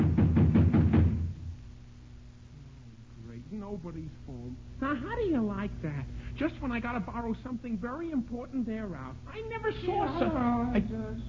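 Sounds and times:
knocking on a door: 0.0s - 1.3s
speech: 3.8s - 11.2s.

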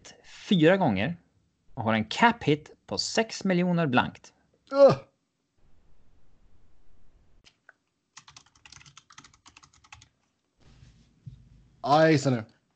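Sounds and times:
speech: 0.5s - 1.2s, 1.8s - 5.1s, 11.8s - 12.5s
rapid typing on a computer keyboard: 8.2s - 10.2s.

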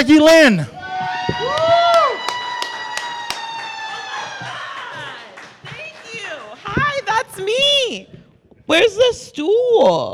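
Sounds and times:
speech: 0.0s - 0.8s, 8.7s - 10.1s
person whooping: 0.8s - 5.2s
crowd applause: 0.8s - 7.4s
sharp hand claps: 1.3s - 7.2s.

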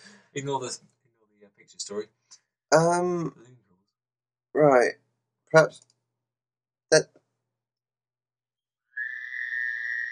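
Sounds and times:
speech: 0.4s - 3.6s, 4.6s - 5.9s, 6.9s - 7.2s
chorus of frogs in a high-pitched buzzing trill: 8.9s - 10.1s.

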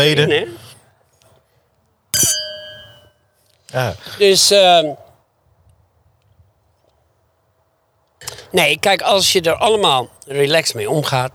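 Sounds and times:
speech: 0.0s - 0.6s, 3.7s - 5.0s, 8.2s - 11.3s
glasses clinking in a toast: 2.2s - 3.1s.

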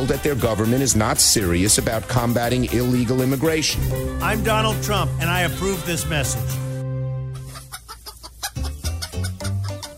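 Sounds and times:
speech: 0.0s - 6.6s
chicken drawn-out squawk: 3.9s - 9.9s
chicken clucking: 7.3s - 9.9s.

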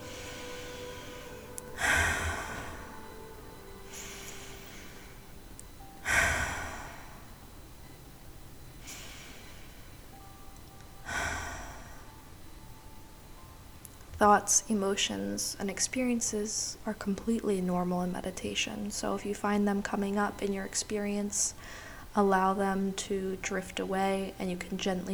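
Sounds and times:
deep cleansing breaths during a meditation practice: 0.0s - 12.4s, 21.6s - 22.2s
speech: 14.2s - 25.1s.

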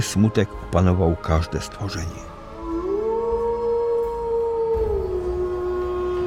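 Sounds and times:
speech: 0.0s - 2.4s
dog howling: 2.4s - 6.2s.

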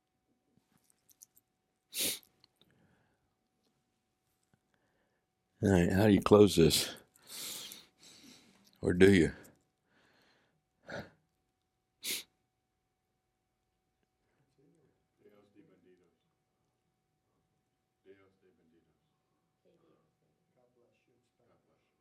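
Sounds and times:
person sneezing: 1.9s - 2.3s, 12.0s - 12.3s
speech: 5.6s - 7.0s, 8.8s - 9.4s.

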